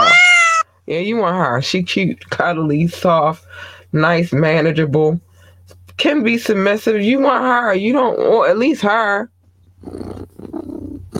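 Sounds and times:
speech: 0.9 - 5.3, 6.0 - 10.0
human voice imitating a cat's purr: 9.8 - 11.1.

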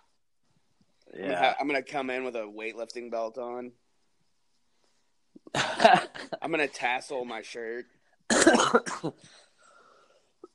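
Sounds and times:
speech: 1.2 - 3.8, 5.5 - 9.4
person coughing harshly, trailing into a raspy breath: 8.3 - 9.2.

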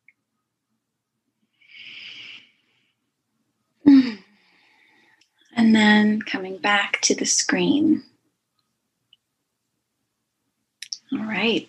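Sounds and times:
deep breaths: 1.5 - 3.1, 4.2 - 5.4
faint voiced sigh on exhale: 3.9 - 4.4
speech: 5.7 - 8.1, 11.4 - 11.6.

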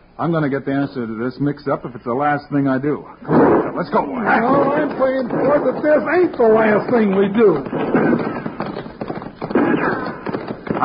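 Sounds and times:
speech: 0.2 - 8.4
gunshots fired from several directions: 3.3 - 10.8.

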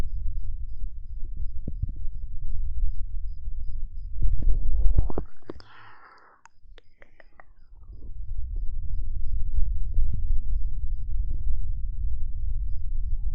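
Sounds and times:
steady low rumble: 0.0 - 13.3
ear-eating mouth sounds with clicks and wet smacks: 4.9 - 7.6.

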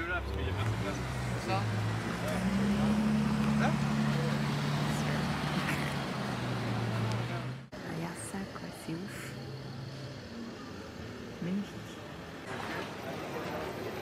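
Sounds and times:
powerful Bentley taxi engine revving: 0.0 - 7.7
busy street noise: 0.0 - 13.9.

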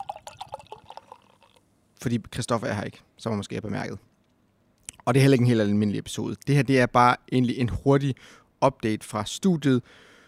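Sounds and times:
non-alcoholic pale ale pouring into a glass: 0.0 - 1.6
speech: 2.0 - 4.1, 5.0 - 10.1.

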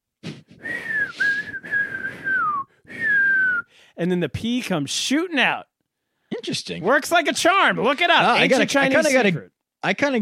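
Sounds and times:
breathy noise: 0.2 - 4.0
person whistling a steady sustained tone: 0.6 - 3.8
speech: 4.0 - 5.7, 6.4 - 10.1.

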